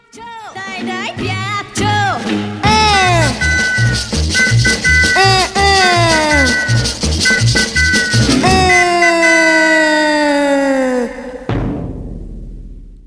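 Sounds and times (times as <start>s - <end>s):
upbeat Italian pop song with female vocal: 0.1s - 3.4s
steady bouncy bass rhythm: 0.9s - 9.5s
laughter: 2.6s - 4.0s, 5.0s - 11.5s.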